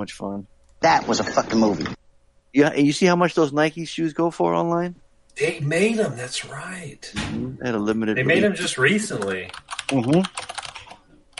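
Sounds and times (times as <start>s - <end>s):
speech: 0.0s - 10.5s
person making a brief voiced sound: 5.4s - 10.3s
typing on a computer keyboard: 9.2s - 11.3s.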